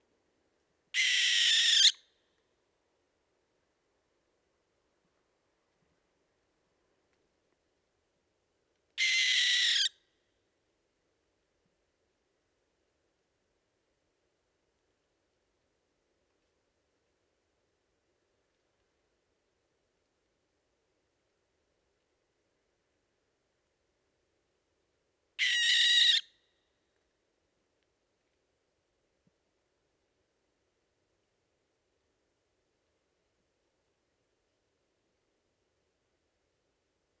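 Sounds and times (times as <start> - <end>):
barn owl Tyto alba calling: 1.0 - 2.0, 9.0 - 10.0, 25.4 - 26.3.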